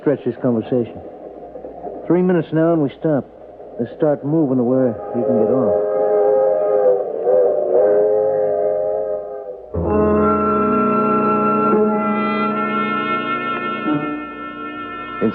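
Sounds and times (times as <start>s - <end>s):
speech: 0.0s - 1.2s, 2.1s - 5.9s
train whistle blasts: 5.0s - 15.3s.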